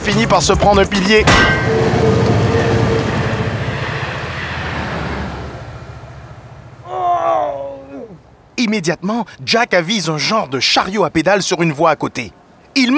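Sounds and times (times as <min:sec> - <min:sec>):
train rumbling: 0:00.0 - 0:10.8
speech: 0:00.1 - 0:02.0, 0:08.6 - 0:12.9
short high tonal burst: 0:01.3 - 0:06.9.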